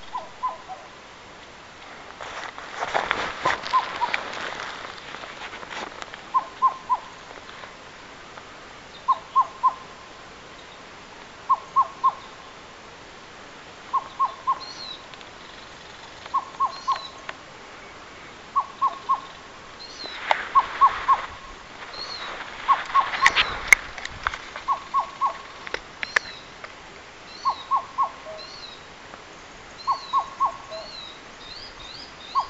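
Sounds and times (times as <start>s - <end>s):
Madagascar cuckoo Cuculus rochii calling: 0.0s - 1.0s, 3.5s - 4.4s, 6.3s - 7.3s, 9.0s - 10.0s, 11.5s - 12.5s, 13.9s - 23.8s, 24.5s - 26.5s, 27.3s - 28.9s, 29.7s - 32.4s.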